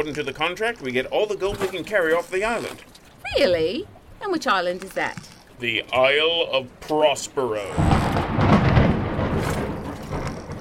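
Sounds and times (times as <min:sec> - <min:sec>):
speech: 0:00.0 - 0:08.3
steady hiss of rain: 0:05.5 - 0:10.5
deep rolling rumble of thunder: 0:07.7 - 0:10.5.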